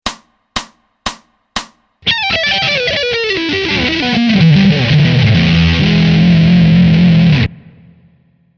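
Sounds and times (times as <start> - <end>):
blues music: 1.6 - 8.2.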